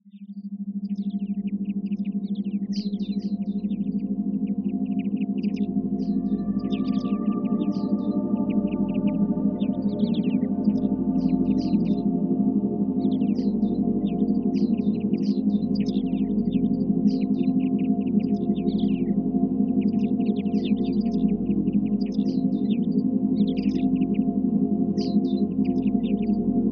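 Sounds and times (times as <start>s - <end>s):
forest sounds: 0.1s - 26.6s.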